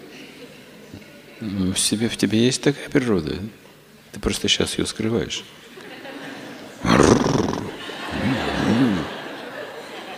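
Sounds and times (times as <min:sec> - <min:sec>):
speech: 0:01.4 - 0:05.6
laughter: 0:05.8 - 0:10.1
person imitating a rough tiger roar: 0:06.8 - 0:09.2.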